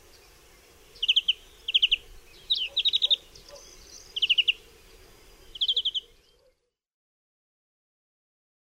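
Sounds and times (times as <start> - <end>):
European greenfinch song of brief trills: 0.0 - 6.7.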